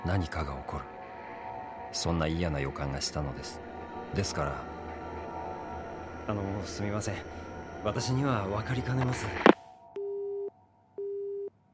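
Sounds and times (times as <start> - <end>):
speech: 0.1 - 1.0, 1.9 - 4.7, 6.3 - 9.6
telephone busy tone after a call is disconnected: 10.0 - 11.5.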